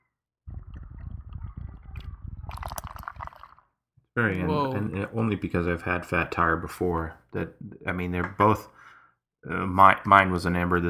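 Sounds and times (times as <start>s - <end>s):
beer glugging and gurgling into a glass: 2.0s - 3.7s
speech: 4.2s - 10.8s.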